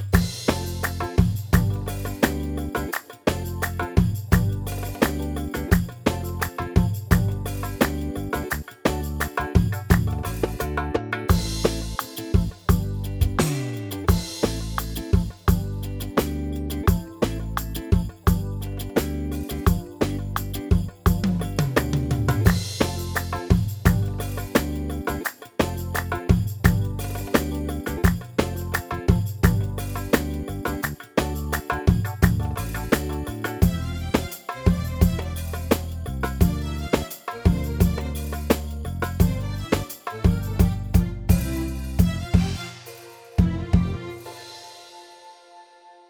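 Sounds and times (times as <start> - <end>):
arranger keyboard Saidi style rhythm: 0.1 - 46.0.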